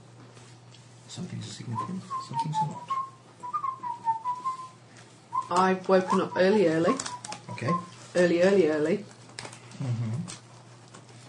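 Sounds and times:
speech: 1.1 - 3.0, 5.5 - 9.1
person whistling a short tune: 1.7 - 8.0.

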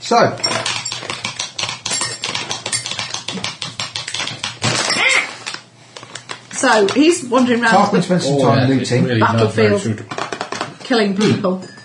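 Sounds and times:
speech: 0.1 - 0.6, 6.6 - 10.2, 10.9 - 11.8
plastic bag of dried plums crinkling as it is pulled open: 4.6 - 6.6.

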